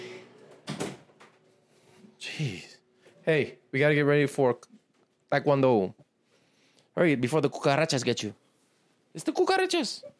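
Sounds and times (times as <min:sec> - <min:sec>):
door shutting with a thud and rattle: 0:00.6 - 0:01.1
speech: 0:02.4 - 0:04.7, 0:05.3 - 0:06.0, 0:07.0 - 0:08.4, 0:09.2 - 0:10.1.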